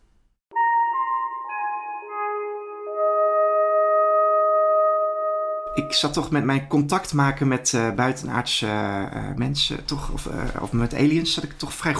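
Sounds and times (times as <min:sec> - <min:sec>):
synthesized melody of clean electronic tones ringing into a chord: 0:00.5 - 0:06.4
speech: 0:05.8 - 0:11.9.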